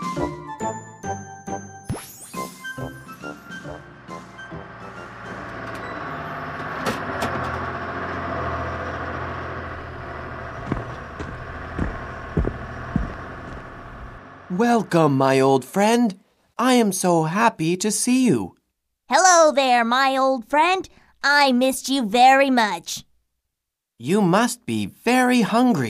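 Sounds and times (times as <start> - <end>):
city bus bright ringing chime: 3.4 - 10.4
footsteps clacking as people step off a bus: 10.6 - 14.2
speech: 14.6 - 23.1, 24.0 - 25.8.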